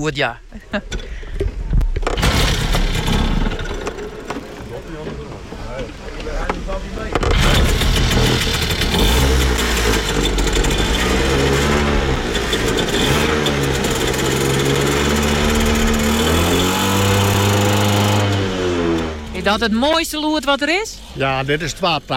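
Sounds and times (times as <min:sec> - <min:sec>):
speech: 0:00.0 - 0:01.1, 0:05.8 - 0:11.4, 0:19.4 - 0:22.1
moped engine sputtering and revving: 0:02.0 - 0:05.1, 0:06.7 - 0:19.9.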